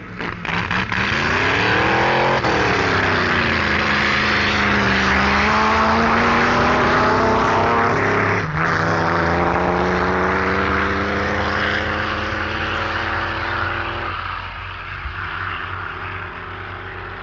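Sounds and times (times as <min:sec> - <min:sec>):
drag racing dragster engines accelerating down a strip: 0:00.0 - 0:17.2.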